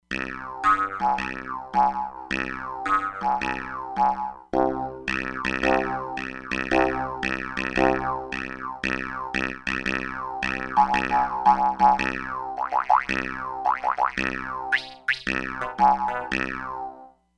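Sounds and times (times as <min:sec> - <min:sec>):
synthesized ambient Jew's harp from an E-mu Proteus-3 factory patch: 0:00.1 - 0:17.1.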